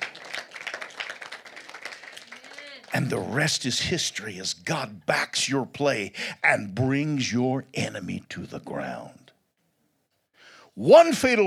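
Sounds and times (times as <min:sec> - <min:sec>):
audience clapping: 0:00.0 - 0:03.5
speech: 0:03.0 - 0:09.2, 0:10.8 - 0:11.4.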